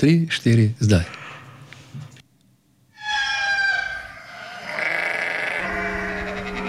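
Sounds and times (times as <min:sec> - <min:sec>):
speech: 0:00.0 - 0:01.2
cow lowing: 0:03.0 - 0:06.6
farm animal calls: 0:03.0 - 0:06.6
rooster crowing: 0:03.0 - 0:06.6.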